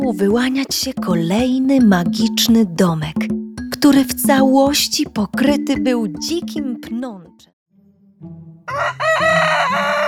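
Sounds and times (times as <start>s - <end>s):
speech: 0.1s - 7.5s, 8.2s - 10.0s
rooster crowing: 8.6s - 10.0s.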